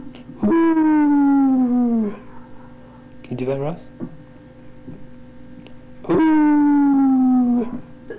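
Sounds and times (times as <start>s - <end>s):
person imitating a howl with a sustained falling vocal tone: 0.4s - 2.3s, 6.0s - 7.9s
speech: 3.4s - 4.2s.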